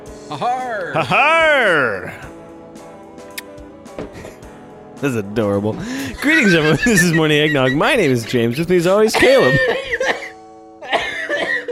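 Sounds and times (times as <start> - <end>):
speech: 0.3 - 2.3, 5.0 - 10.1
laughter: 5.9 - 11.6
person coughing harshly: 9.1 - 11.6.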